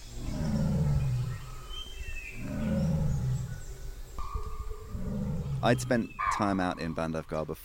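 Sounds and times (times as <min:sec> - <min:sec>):
tiger roaring: 0:00.0 - 0:06.0
faint bird chirps: 0:00.0 - 0:07.6
speech: 0:05.6 - 0:07.6.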